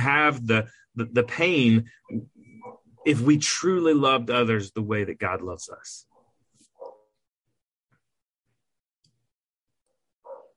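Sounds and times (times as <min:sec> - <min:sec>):
speech: 0:00.0 - 0:02.4, 0:03.0 - 0:06.1
softer, shorter dog barks or yips: 0:02.6 - 0:03.1, 0:06.8 - 0:07.1, 0:10.2 - 0:10.5
dogs barking: 0:02.6 - 0:03.3, 0:06.1 - 0:07.2, 0:10.2 - 0:10.5.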